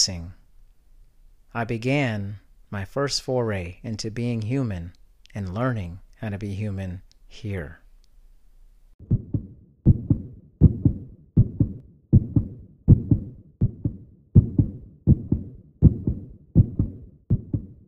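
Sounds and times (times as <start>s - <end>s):
speech: 0.0s - 0.4s, 1.5s - 7.8s
heartbeat: 9.0s - 17.8s.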